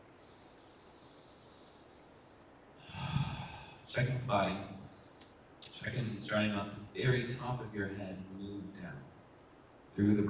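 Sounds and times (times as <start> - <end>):
deep breath drawn through the nose: 0.0 - 3.8
quiet hiss: 0.0 - 10.2
speech: 3.9 - 4.8, 5.8 - 9.1, 10.0 - 10.2.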